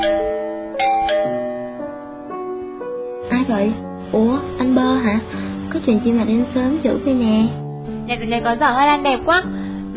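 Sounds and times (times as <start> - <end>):
electronic doorbell multi-note ding-dong chime: 0.0 - 2.0
speech: 3.5 - 9.6.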